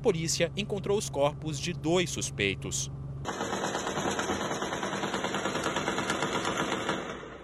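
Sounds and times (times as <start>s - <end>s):
speech: 0.0s - 4.1s
rapid gunfire at night in communities of the west zone of Rio de Janeiro, Brazil: 3.3s - 7.4s.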